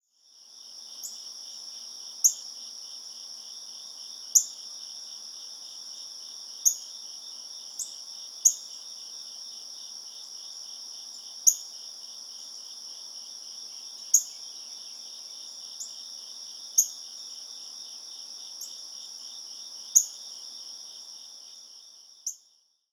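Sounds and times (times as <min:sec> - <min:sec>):
nature ambience: 0:00.0 - 0:22.9.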